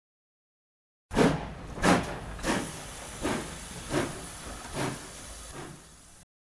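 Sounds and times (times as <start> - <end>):
early steam locomotive hissing steam chuffs: 1.1 - 6.2.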